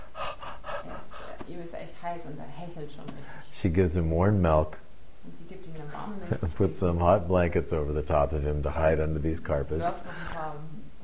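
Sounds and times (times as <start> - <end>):
voice imitating a hot man's heavy panting: 0.0 - 1.5
speech: 1.5 - 10.7.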